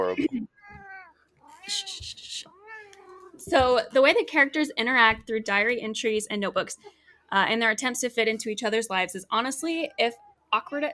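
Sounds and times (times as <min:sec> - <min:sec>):
speech: 0:00.1 - 0:00.5, 0:01.7 - 0:02.2, 0:03.4 - 0:10.9
cat meowing in drawn-out wavering calls: 0:00.6 - 0:03.4.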